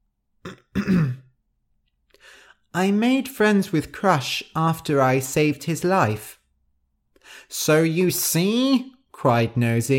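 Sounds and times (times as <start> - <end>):
voice acting a mouse character clearing his throat: 0.4 - 1.3
speech: 2.8 - 6.4, 7.3 - 9.9.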